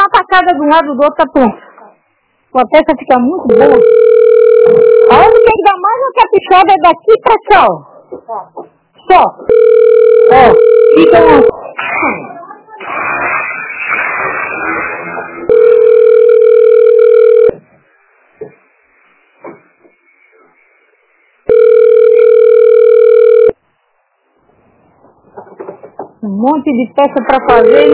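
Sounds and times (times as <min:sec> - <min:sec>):
speech: 0:00.3 - 0:01.6, 0:02.5 - 0:04.1, 0:04.7 - 0:15.4, 0:26.2 - 0:27.9
telephone with electronic ring ringing: 0:03.5 - 0:05.6, 0:09.5 - 0:11.6, 0:15.5 - 0:17.6, 0:21.5 - 0:23.6, 0:27.5 - 0:27.9.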